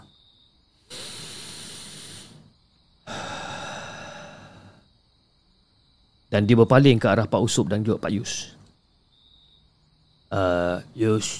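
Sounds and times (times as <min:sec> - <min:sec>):
long deep breath with airy inhale and hissing exhale: 0:00.8 - 0:04.9
speech: 0:06.4 - 0:08.6, 0:10.3 - 0:11.3.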